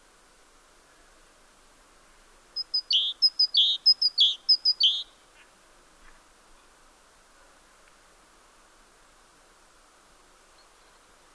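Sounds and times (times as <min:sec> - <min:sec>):
great tit calling: 0:02.6 - 0:05.2, 0:10.5 - 0:11.1.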